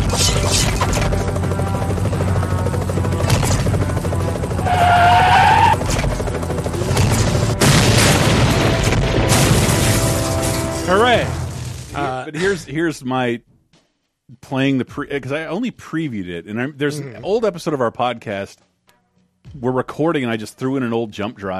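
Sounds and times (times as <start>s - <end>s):
video game engine whine: 0.0s - 12.0s
video game attack helicopter rotor roar: 0.0s - 12.1s
video game police car crashing into attack helicopter: 7.0s - 12.0s
speech: 12.3s - 13.5s, 14.5s - 18.7s, 19.4s - 21.5s.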